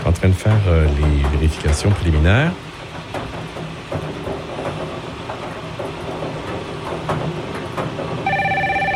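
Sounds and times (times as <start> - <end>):
steady rumbling clattering noise: 0.0 - 8.8
speech: 0.2 - 3.3
loud pulsing telephone ring: 8.2 - 8.9.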